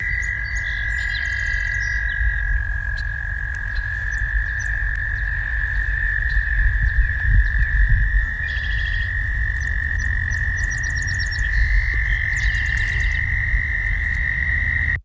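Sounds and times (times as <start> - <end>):
chorus of American toads trilling: 0.0 - 15.0
low rumbling noise: 0.0 - 15.0.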